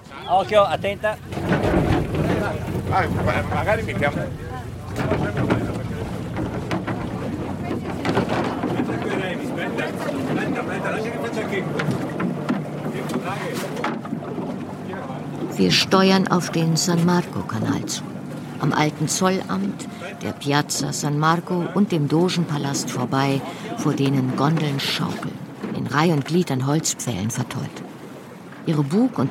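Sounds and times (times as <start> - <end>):
voices: 0.0 - 25.3
crane lowering a wooden boat into water, rumbling and clanking: 0.0 - 29.2
wind buffeting the microphone: 0.2 - 20.6
speech: 0.3 - 1.8, 2.4 - 5.8, 8.2 - 12.2, 13.0 - 14.0, 15.6 - 27.9, 28.7 - 29.2.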